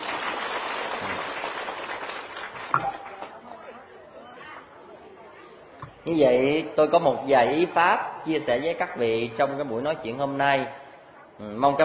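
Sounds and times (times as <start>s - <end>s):
audience applause at a Buddhist dharma talk: 0.0s - 3.5s
speech: 6.0s - 10.8s, 11.4s - 11.8s.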